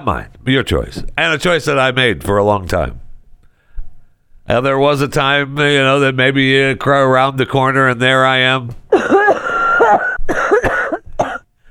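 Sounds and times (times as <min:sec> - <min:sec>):
speech: 0:00.0 - 0:03.0, 0:04.5 - 0:10.5
raspy phlegmy coughing fit: 0:08.9 - 0:11.5.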